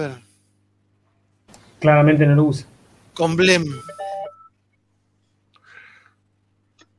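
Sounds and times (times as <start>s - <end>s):
speech: 0.0s - 0.3s, 1.8s - 4.0s
telephone keypad tones of a number being dialed: 3.8s - 4.5s.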